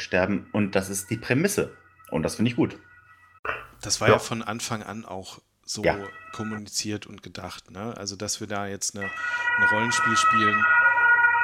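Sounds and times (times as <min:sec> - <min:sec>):
ambulance siren wailing outside: 0:00.0 - 0:03.4, 0:05.8 - 0:06.6, 0:09.0 - 0:11.4
speech: 0:00.0 - 0:10.8.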